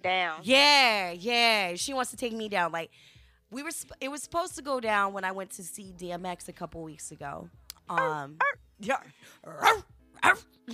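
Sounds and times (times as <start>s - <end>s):
speech: 0.0s - 10.7s
small Yorkie dog whiny yelp: 8.0s - 8.6s, 9.5s - 10.5s
small Yorkie dog yapping: 8.0s - 8.6s, 9.6s - 10.4s.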